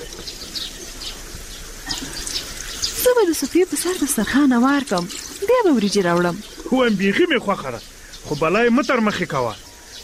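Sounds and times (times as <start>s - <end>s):
warm water poured over hands for washing with soap: 1.9s - 6.8s
speech: 3.0s - 9.6s.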